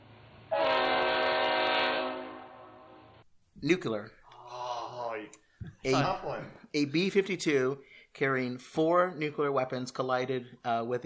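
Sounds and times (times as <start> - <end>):
loud sustained chord-like train horn blast: 0.5 - 3.2
speech: 3.6 - 4.2, 5.2 - 11.0.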